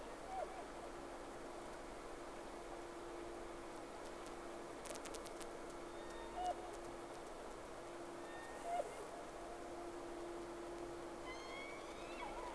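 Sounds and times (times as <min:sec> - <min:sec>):
whale calls with tonal sweeps and upsweeps: 0:00.0 - 0:00.8, 0:06.0 - 0:06.9, 0:08.1 - 0:10.0, 0:11.2 - 0:12.5
background hiss: 0:00.0 - 0:12.5
steady low hum: 0:00.0 - 0:12.5.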